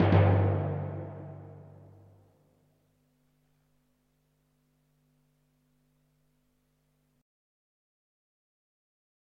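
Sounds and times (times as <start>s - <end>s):
drum hits: 0.0s - 2.0s.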